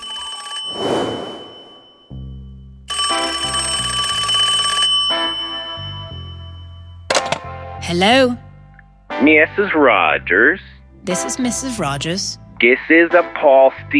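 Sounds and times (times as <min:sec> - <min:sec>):
telephone bell ringing: 0:00.0 - 0:07.3
speech: 0:07.9 - 0:08.4, 0:09.2 - 0:13.9.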